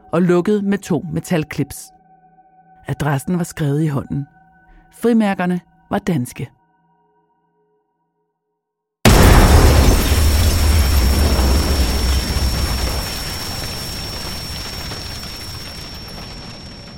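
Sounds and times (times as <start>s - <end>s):
speech: 0.1s - 2.0s, 2.9s - 6.6s
letter bomb blast: 9.1s - 16.4s
hissing crackling tail of the explosion: 9.1s - 16.9s.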